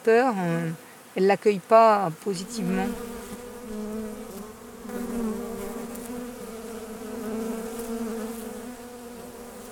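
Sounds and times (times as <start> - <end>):
speech: 0.0 - 3.1
honeybees buzzing while collecting honey from a person's skin: 0.0 - 9.7.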